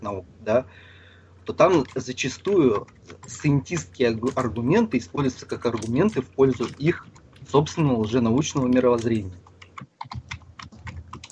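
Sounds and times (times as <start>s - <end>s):
speech: 0.1s - 0.9s, 1.5s - 9.4s, 10.0s - 10.3s
loud keyboard typing: 1.5s - 11.3s.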